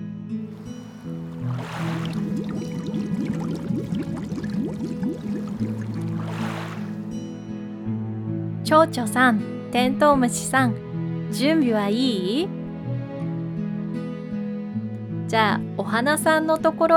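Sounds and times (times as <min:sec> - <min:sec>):
steady musical backing: 0:00.0 - 0:16.9
water poured into a bottle: 0:00.6 - 0:07.2
speech: 0:08.7 - 0:12.6, 0:15.3 - 0:16.9.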